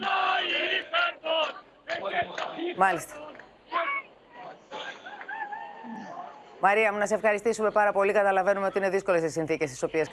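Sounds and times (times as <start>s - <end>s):
enthusiastic crowd chanting a name: 0.0s - 6.5s
speech: 2.7s - 3.2s, 6.6s - 10.1s.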